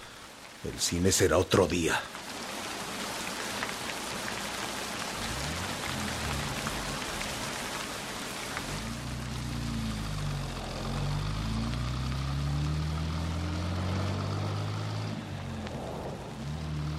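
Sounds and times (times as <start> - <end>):
heavy rain drumming on surfaces: 0.0 - 16.9
speech: 0.6 - 2.2
low rumbling undertone: 5.0 - 16.9.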